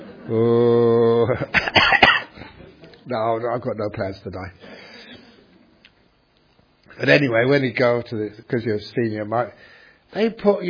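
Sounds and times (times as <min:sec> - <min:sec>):
Buddhist monk giving a drawn-out voiced hum: 0:00.2 - 0:01.5
speech: 0:00.3 - 0:01.6, 0:03.1 - 0:04.8, 0:07.0 - 0:10.6
Buddhist monk coughing harshly: 0:01.5 - 0:02.6.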